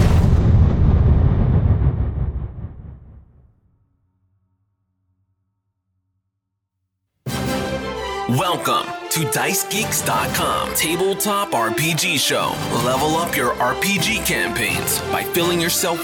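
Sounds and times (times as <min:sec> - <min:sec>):
ruby exploding in a loud deep boom: 0:00.0 - 0:03.9
speech: 0:08.3 - 0:16.0.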